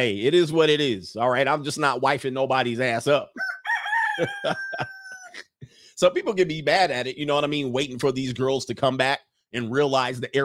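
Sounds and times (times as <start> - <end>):
speech: 0.0 - 3.4, 4.2 - 10.4
rooster crowing: 3.4 - 5.4.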